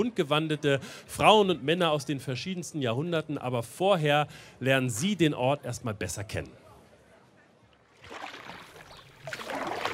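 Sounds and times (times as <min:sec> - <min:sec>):
speech: 0:00.0 - 0:06.6
water sloshing and splashing: 0:07.9 - 0:09.9.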